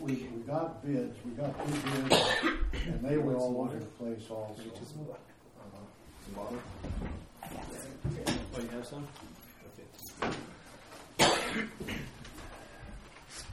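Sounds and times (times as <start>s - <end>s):
speech: 0.0s - 9.3s
person coughing in sharp harsh bursts: 2.1s - 3.0s, 11.2s - 12.2s.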